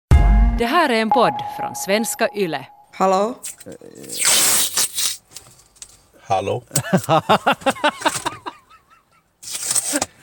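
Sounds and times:
speech: 0:00.6 - 0:04.4, 0:06.3 - 0:08.4
silver duct tape ripping off the roll: 0:03.4 - 0:05.3, 0:09.4 - 0:10.2
person laughing: 0:06.8 - 0:09.2.

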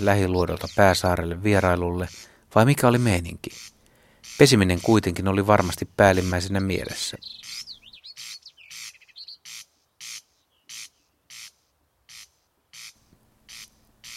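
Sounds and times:
speech: 0:00.0 - 0:07.5
corncrake rasping in a potato field: 0:02.0 - 0:06.5
bird whistling brief phrases: 0:07.2 - 0:11.1.

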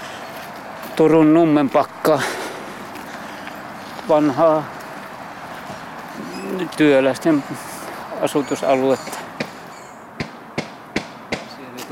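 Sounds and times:
faint outdoor hum: 0:00.0 - 0:11.9
speech: 0:01.0 - 0:02.4, 0:04.1 - 0:04.8, 0:06.5 - 0:09.2
hammering from renovation work in an old workers' residential area in Turku: 0:10.2 - 0:11.6.

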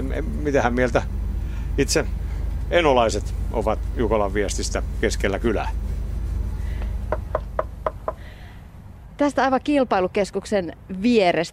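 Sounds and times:
steady low rumble: 0:00.0 - 0:11.5
speech: 0:00.1 - 0:01.2, 0:01.8 - 0:05.8, 0:09.2 - 0:11.5
knocking on a wooden front door: 0:07.1 - 0:08.2.

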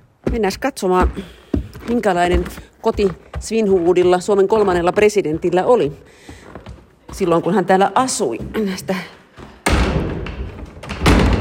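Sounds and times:
speech: 0:00.3 - 0:06.4, 0:07.1 - 0:09.2
door of a historic home museum pushed shut with a thud: 0:09.6 - 0:11.3.

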